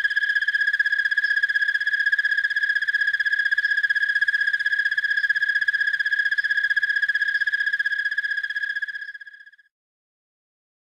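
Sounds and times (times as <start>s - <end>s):
broad-winged tree cricket giving a continuous trill: 0.0s - 9.7s.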